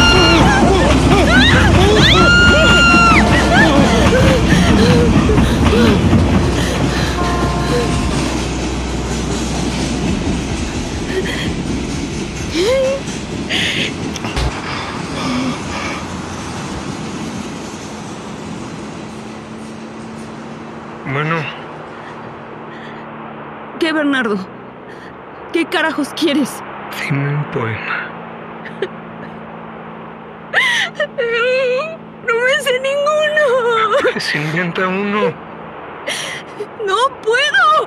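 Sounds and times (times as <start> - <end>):
people shouting: 0.0 - 6.1
laughter: 0.0 - 8.0, 28.7 - 28.9, 33.5 - 35.3
high train squeals: 0.0 - 10.0
rhythmic rail clatter: 0.0 - 21.0
train passing: 0.0 - 37.8
speech: 25.8 - 28.0, 34.4 - 35.4.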